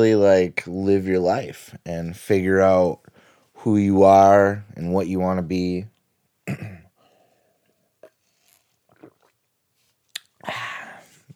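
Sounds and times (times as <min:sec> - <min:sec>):
speech: 0:00.0 - 0:05.9, 0:06.5 - 0:06.8
gulp and swallow: 0:08.0 - 0:09.4
sipping and slurping cold brew coffee: 0:08.0 - 0:09.4.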